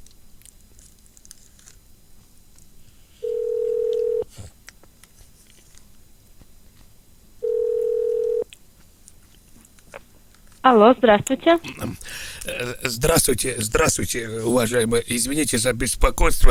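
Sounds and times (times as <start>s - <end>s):
faint noise: 0.0s - 16.4s
telephone ringback tones while a call connects to a shop: 3.2s - 4.2s, 7.4s - 8.4s
speech: 10.7s - 16.4s.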